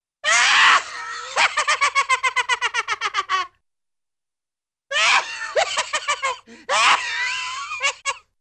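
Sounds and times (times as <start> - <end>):
evil demented little man or kid laughing rapidly, cartoon: 0.6 - 3.6, 5.0 - 8.3.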